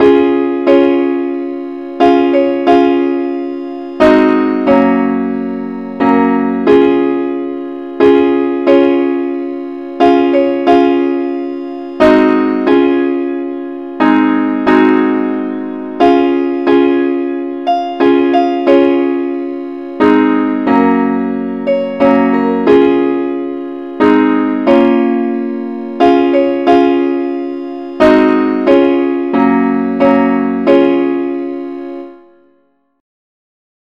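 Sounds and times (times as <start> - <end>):
simple accompaniment in C sharp: 0.0 - 32.8.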